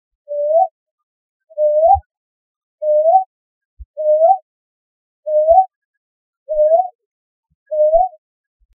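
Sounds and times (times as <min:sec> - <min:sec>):
brown hawk owl Ninox scutulata in Thekkady Kerala: 0:00.3 - 0:00.8, 0:01.5 - 0:02.1, 0:02.8 - 0:03.3, 0:04.0 - 0:04.5, 0:05.2 - 0:05.8, 0:06.5 - 0:07.0, 0:07.7 - 0:08.2.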